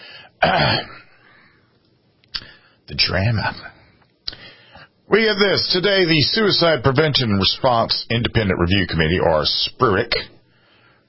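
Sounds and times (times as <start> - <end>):
speech: 0.4 - 0.9, 3.1 - 3.7, 5.1 - 10.3
throat clearing: 0.4 - 1.1.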